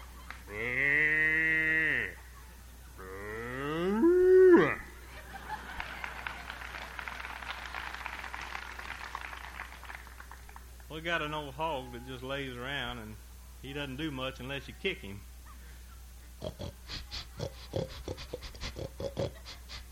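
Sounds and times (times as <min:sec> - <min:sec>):
soft crackling hissing outdoor background: 0:00.0 - 0:19.9
cow mooing: 0:00.5 - 0:02.2, 0:03.0 - 0:04.9
laughter: 0:04.5 - 0:07.9, 0:15.4 - 0:19.9
speech: 0:11.0 - 0:15.3, 0:16.4 - 0:17.1.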